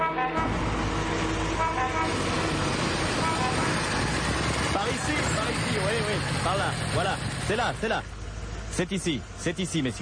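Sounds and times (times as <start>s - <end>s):
horn-like tones: 0.0s - 4.2s
engines and traffic roar of arriving ambulance, police car and motorcycle: 0.0s - 10.0s
speech: 6.4s - 8.2s, 8.8s - 10.0s.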